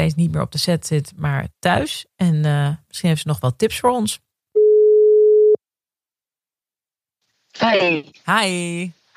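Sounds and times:
speech: 0.0 - 4.3, 7.6 - 9.0
telephone ringback tone while waiting for a call to connect: 4.6 - 5.6.

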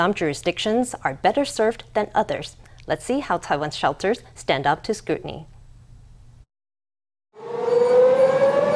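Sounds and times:
speech: 0.0 - 5.5
civil defense air raid drill siren in Taiwan wailing: 7.4 - 8.7.

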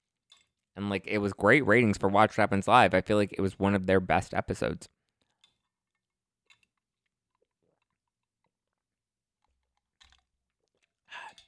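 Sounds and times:
speech: 0.8 - 5.0
person sipping a drink: 5.3 - 11.4
wet swallowing noises: 6.7 - 11.3.

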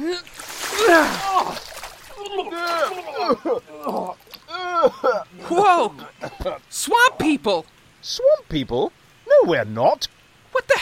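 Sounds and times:
speech: 0.0 - 1.6, 2.5 - 4.2, 4.8 - 10.8
urine splashing from an emptied chamber pot: 0.0 - 4.5
people shouting in startled voices: 0.7 - 3.4.

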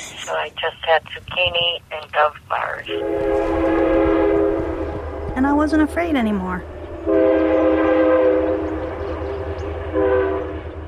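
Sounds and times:
speech: 0.3 - 4.0, 5.4 - 6.7
commuter train horn blaring: 2.9 - 10.8.

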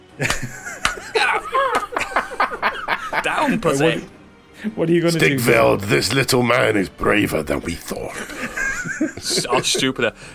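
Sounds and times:
speech: 0.2 - 0.6, 3.4 - 8.4, 9.0 - 10.3
sharp hand slaps: 0.2 - 2.1
snickering laughter: 0.2 - 3.6, 8.2 - 10.0
excited voices: 0.2 - 4.1, 8.0 - 10.1.

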